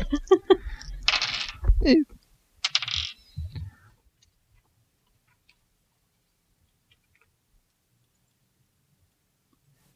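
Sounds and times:
large thirty-sided dice rattling across a hard tabletop: 0.9 - 1.9, 2.6 - 3.6
speech: 1.8 - 2.1.

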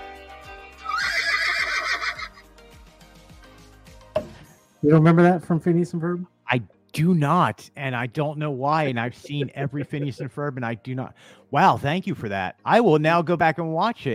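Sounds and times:
horse neighing: 0.8 - 2.4
speech: 4.9 - 14.1
laughter: 8.8 - 10.8.

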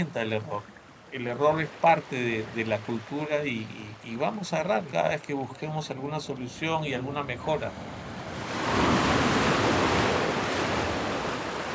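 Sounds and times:
speech: 0.0 - 8.1
ocean waves breaking: 0.0 - 11.7.

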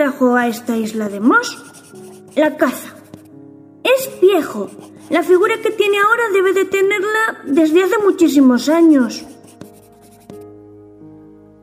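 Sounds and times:
speech: 0.1 - 3.0, 3.8 - 9.3
pencil scratching across paper: 0.8 - 3.3, 3.9 - 6.2, 8.7 - 10.4.

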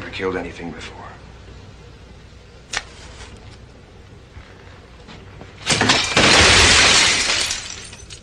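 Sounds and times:
speech: 0.2 - 1.1
glass cabinet full of lab equipment shattering: 5.6 - 8.2.

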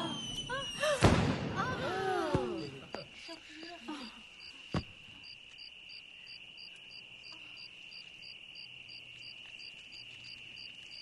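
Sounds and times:
chorus of crickets: 0.0 - 1.0, 1.6 - 11.0
fireworks popping and banging: 0.1 - 3.1.

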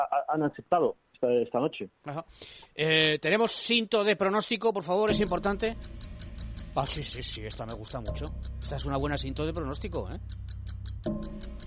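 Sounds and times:
speech: 0.0 - 6.2, 6.8 - 11.3
rapid clock ticking: 3.1 - 11.6
low droning bed: 5.1 - 11.6
sustained tense musical tone: 5.1 - 11.6.

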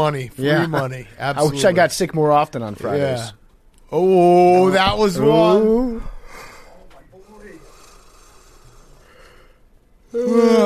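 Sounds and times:
speech: 0.0 - 6.1, 10.1 - 10.6
person yawning: 10.1 - 10.6.

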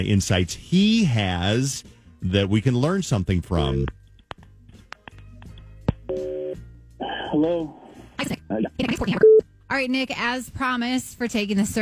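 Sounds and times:
speech: 0.0 - 4.0, 7.3 - 11.7
steady two-pitch telephone tone: 6.1 - 6.6, 9.2 - 9.4.

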